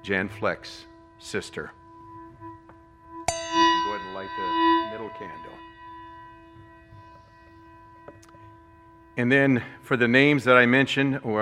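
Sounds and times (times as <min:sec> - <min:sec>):
speech: 0:00.0 - 0:01.8, 0:04.2 - 0:05.7, 0:09.2 - 0:11.4
memorial bell tolling: 0:03.2 - 0:11.4.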